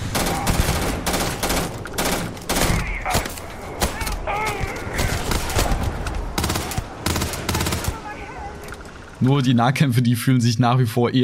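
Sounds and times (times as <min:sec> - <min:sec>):
video game gunfire during a shootout: 0:00.1 - 0:08.3
speech: 0:09.2 - 0:11.2.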